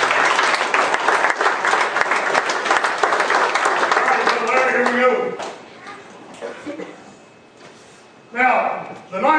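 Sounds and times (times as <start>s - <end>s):
large audience applause: 0.0s - 5.2s.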